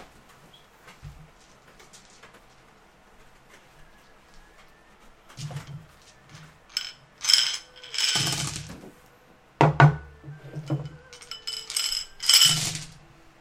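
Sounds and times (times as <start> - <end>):
dice rattling in a cloth dice bag: 5.4 - 8.8, 10.6 - 13.0.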